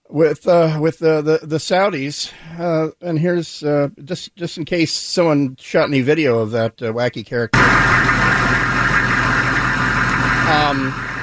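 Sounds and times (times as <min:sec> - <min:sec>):
speech: 0:00.2 - 0:08.2, 0:10.5 - 0:11.1
Humvee engine idling: 0:07.6 - 0:11.2.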